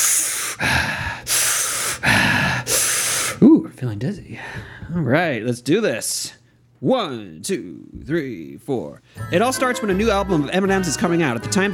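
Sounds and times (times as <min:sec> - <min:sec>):
deep rapid forced breathing: 0:00.0 - 0:03.4, 0:04.3 - 0:05.1
speech: 0:03.5 - 0:11.7.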